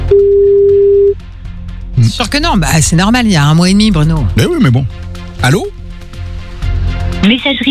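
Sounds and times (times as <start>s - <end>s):
telephone ringback tone on an unanswered call: 0.1s - 1.2s
speech: 2.2s - 5.8s, 7.2s - 7.6s.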